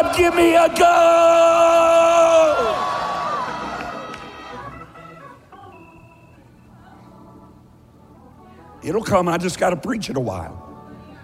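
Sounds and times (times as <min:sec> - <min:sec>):
speech: 0:00.0 - 0:02.4, 0:08.8 - 0:10.6
church audience screaming together: 0:00.0 - 0:04.8.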